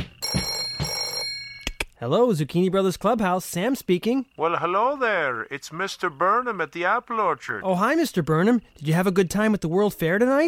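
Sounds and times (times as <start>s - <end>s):
clubhouse telephone bell ringing in a metallic trill: 0.2s - 1.7s
speech: 2.0s - 10.4s.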